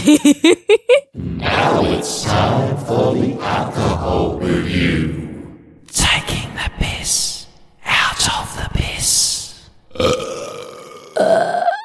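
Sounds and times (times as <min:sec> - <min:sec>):
laughter: 0:00.0 - 0:01.1
speech: 0:00.0 - 0:05.3, 0:05.9 - 0:07.3, 0:07.9 - 0:09.4, 0:10.0 - 0:11.8
person making a forced croaky burp attempt: 0:09.9 - 0:11.8.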